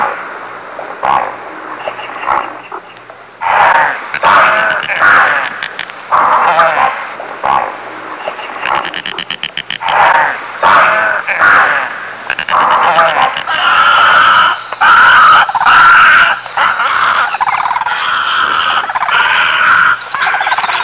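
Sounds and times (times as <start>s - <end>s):
animal screaming in old movie: 3.4s - 7.7s, 8.7s - 20.8s.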